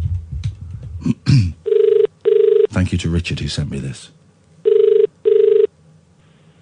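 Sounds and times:
speech: 0:01.0 - 0:01.6, 0:02.8 - 0:04.2
electronic ringback tone of an outgoing phone call to Australia: 0:01.7 - 0:02.7, 0:04.6 - 0:05.7.

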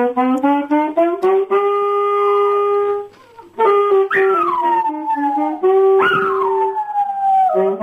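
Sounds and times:
alto saxophone sustained notes: 0:00.0 - 0:07.8
dogs howling along to alto saxophone: 0:04.1 - 0:07.8.

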